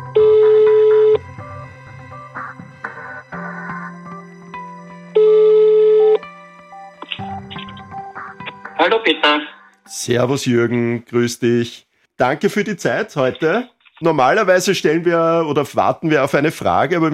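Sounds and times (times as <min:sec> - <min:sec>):
outgoing telephone call ring tones: 0:00.1 - 0:01.2, 0:05.2 - 0:06.2
speech: 0:08.8 - 0:17.1.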